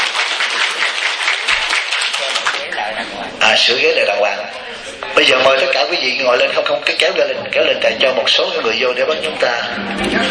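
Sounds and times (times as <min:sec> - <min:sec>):
audience applause at a Buddhist teaching gathering: 0:00.0 - 0:02.9
speech: 0:03.6 - 0:10.2.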